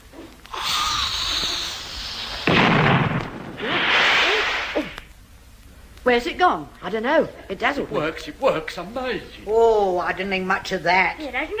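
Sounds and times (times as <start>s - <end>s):
rushing hissing roar: 0.5s - 2.5s, 3.5s - 5.1s
device exploding in a loud blast: 2.4s - 5.0s
speech: 6.1s - 11.5s.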